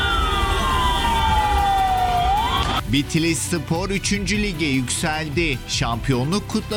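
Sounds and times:
ambulance siren wailing through traffic jammed by football championship celebrations: 0:00.0 - 0:02.8
speech: 0:02.9 - 0:06.7.

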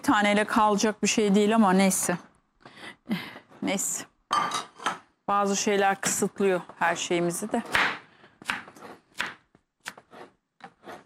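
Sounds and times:
speech: 0:00.1 - 0:02.3, 0:03.1 - 0:04.7, 0:05.3 - 0:08.6
knife chopping food on a cutting board: 0:07.6 - 0:11.0.

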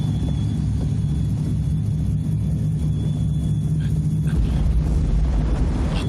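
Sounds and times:
airplane engine rumbling with a deep droning roar and high whine: 0:00.0 - 0:06.0.

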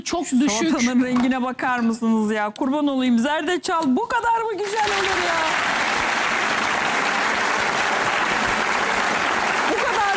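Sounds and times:
speech: 0:00.0 - 0:05.8
applause: 0:04.6 - 0:10.1.

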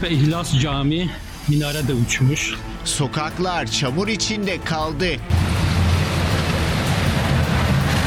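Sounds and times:
speech: 0:00.0 - 0:05.7
heavy downpour rain: 0:05.3 - 0:08.0.

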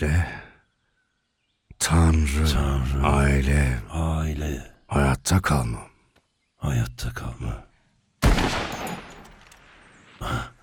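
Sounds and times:
speech: 0:00.0 - 0:00.4, 0:01.9 - 0:05.9, 0:06.6 - 0:07.7
gunshots while hunting in a video game: 0:08.2 - 0:09.8.

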